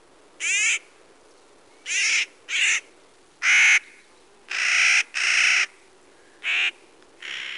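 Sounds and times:
Clark's nutcracker giving harsh grating nasal calls: 1.8s - 5.8s, 6.4s - 7.5s.

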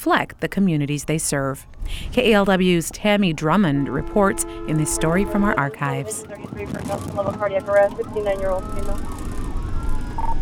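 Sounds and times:
speech: 0.0s - 9.2s
heavy ambulance engine rumble: 0.0s - 10.3s
ambulance siren wailing while racing to emergency call: 2.2s - 10.4s.

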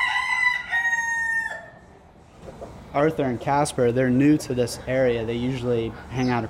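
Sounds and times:
rooster crowing: 0.0s - 1.8s
speech: 2.9s - 6.4s.

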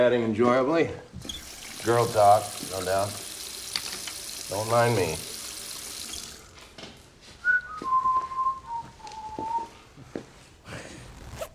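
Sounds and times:
speech: 0.0s - 3.3s, 4.5s - 5.3s
slow wavering whistled tune: 7.4s - 9.8s
zipper being pulled: 11.1s - 11.5s.

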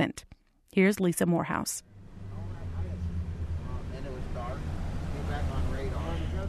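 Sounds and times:
speech: 0.0s - 1.9s
fishing boat engine droning while pulling away from a dock: 1.8s - 6.4s
water wash: 2.3s - 6.4s.

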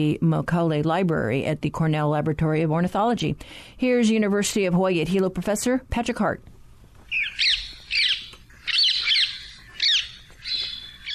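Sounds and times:
speech: 0.0s - 6.5s
rose-ringed parakeet squawks: 7.1s - 11.1s.

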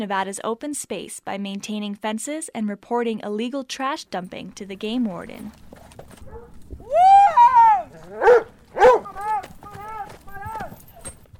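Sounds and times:
speech: 0.0s - 6.1s
faint hoofbeats of riders' horses: 5.0s - 11.3s
pack of hunting hounds baying and barking: 5.7s - 11.2s.

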